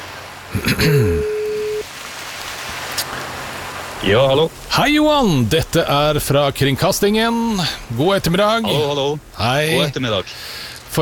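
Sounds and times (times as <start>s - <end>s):
speech: 0.5s - 1.3s, 4.0s - 11.0s
telephone ringing tone on an outgoing call: 1.2s - 1.9s.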